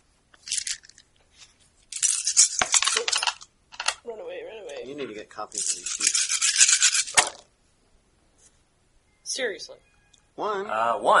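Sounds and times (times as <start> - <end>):
ten dice rolling across a hard surface: 0.4 - 1.0, 1.9 - 4.0, 5.5 - 7.4
speech: 5.0 - 6.2, 9.4 - 11.1.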